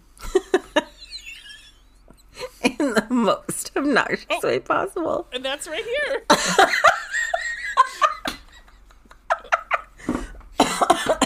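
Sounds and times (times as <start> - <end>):
speech: 2.9 - 7.1
laughter: 6.3 - 10.2
person coughing: 10.6 - 11.2.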